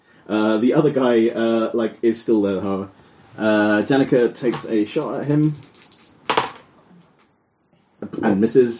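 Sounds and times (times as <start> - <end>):
speech: 0.3 - 5.7, 8.2 - 8.7
dice being rolled and settling: 4.6 - 6.6.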